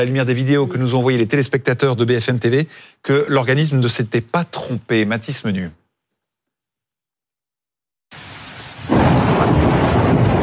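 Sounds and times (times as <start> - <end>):
speech: 0.0 - 5.8
dense steady downpour of hail: 8.2 - 10.4
thunder rumbling during a hailstorm: 8.8 - 10.4.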